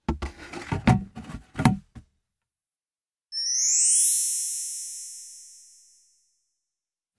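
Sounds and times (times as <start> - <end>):
bin knocking and clattering as it is bumped and handled: 0.0 - 2.0.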